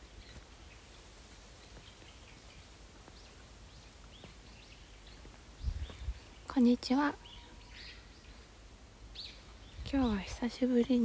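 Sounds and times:
birds chirping in a park: 0.0s - 11.0s
speech: 6.6s - 7.2s, 9.9s - 11.0s.

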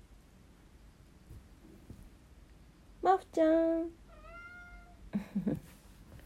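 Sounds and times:
faint hum: 0.0s - 6.2s
speech: 3.4s - 4.0s
cat meowing in reply to its name: 4.1s - 5.0s.

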